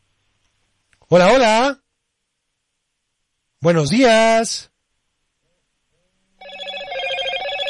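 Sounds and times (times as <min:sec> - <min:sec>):
speech: 0:01.1 - 0:01.8, 0:03.6 - 0:04.7
telephone ringing with an incoming call: 0:06.4 - 0:07.6.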